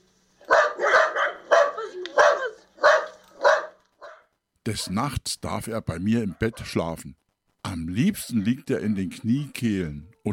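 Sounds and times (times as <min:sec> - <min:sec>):
small wire-haired dachshund barking: 0:00.4 - 0:05.0, 0:06.3 - 0:06.7
speech: 0:04.7 - 0:10.3.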